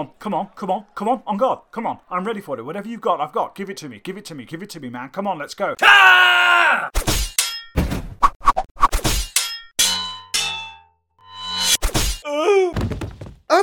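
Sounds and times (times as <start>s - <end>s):
speech: 0.0s - 7.1s
sword blows clanging in a duel: 7.0s - 7.8s, 9.0s - 12.3s.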